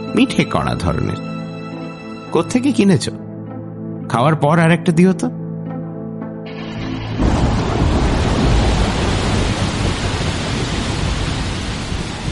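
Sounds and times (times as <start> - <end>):
speech: 0.2 - 1.3, 2.3 - 3.2, 4.1 - 5.4
heavy rain after a storm: 6.5 - 12.3.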